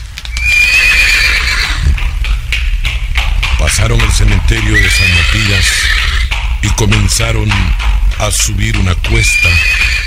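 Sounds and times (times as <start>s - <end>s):
horse hooves clip-clopping: 0.0s - 10.0s
horse neighing: 0.4s - 2.0s, 4.6s - 6.4s, 9.1s - 10.0s
speech: 3.7s - 9.9s.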